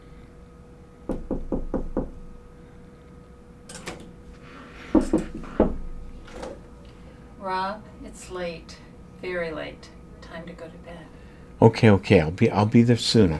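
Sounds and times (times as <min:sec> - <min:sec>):
knocking on a door: 0:01.1 - 0:02.3, 0:04.9 - 0:06.0
speech: 0:07.4 - 0:13.3.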